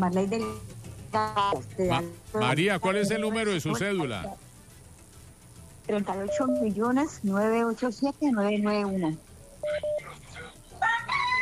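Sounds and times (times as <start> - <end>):
speech: 0.0 - 4.4, 5.9 - 10.0
short pair of electronic beeps: 2.6 - 4.4, 5.9 - 7.3, 9.4 - 10.2
rooster crowing through a crackly line: 10.8 - 11.4.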